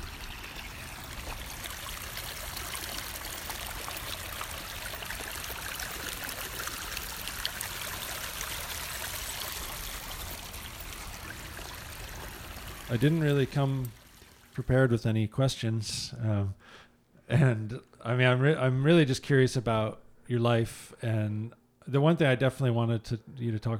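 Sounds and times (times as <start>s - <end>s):
rainwater runoff after heavy rains rushing down a hill: 0.0s - 15.0s
speech: 12.9s - 14.0s, 14.6s - 23.7s.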